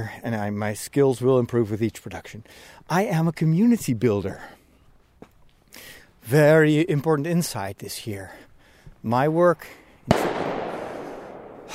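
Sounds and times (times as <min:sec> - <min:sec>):
speech: 0:00.0 - 0:04.6, 0:05.8 - 0:10.4
crackling decay of fireworks in the woods: 0:09.6 - 0:11.7
firework bangs in the woods: 0:10.1 - 0:11.7.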